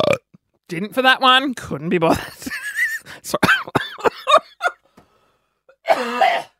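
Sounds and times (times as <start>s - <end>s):
speech: 0.7s - 2.5s, 3.2s - 3.7s
person coughing: 3.4s - 4.4s, 5.8s - 6.5s.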